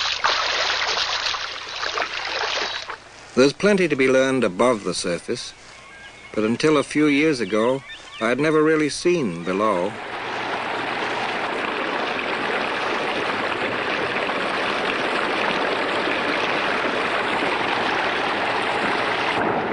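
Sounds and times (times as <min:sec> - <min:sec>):
river water flowing over rocks: 0:00.0 - 0:03.0, 0:10.0 - 0:19.6
speech: 0:03.4 - 0:05.6, 0:06.3 - 0:10.1.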